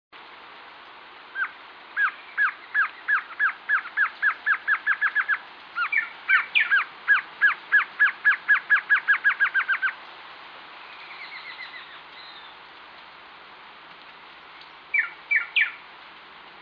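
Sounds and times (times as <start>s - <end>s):
glossy antshrike Sakesphorus luctuosus luctuosus calling: 1.4s - 10.0s, 14.9s - 15.8s.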